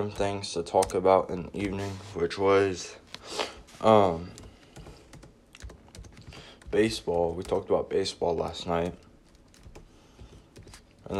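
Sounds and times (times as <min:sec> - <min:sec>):
speech: 0:00.0 - 0:04.4, 0:06.7 - 0:09.0
typing on a computer keyboard: 0:04.2 - 0:11.1.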